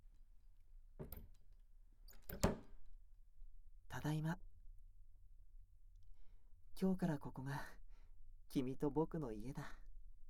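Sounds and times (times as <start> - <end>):
key working the lock of an apartment room door: 2.1 - 2.6
apartment room door opening with a clunk: 2.1 - 2.7
speech: 2.3 - 2.6, 4.0 - 4.5, 6.8 - 7.8, 8.5 - 9.8.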